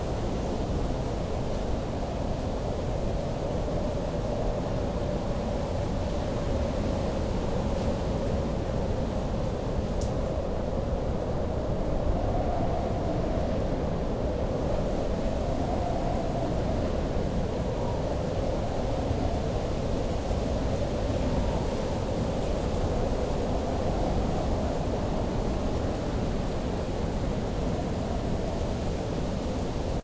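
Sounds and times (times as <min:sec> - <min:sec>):
wind at night: 0:00.0 - 0:30.0.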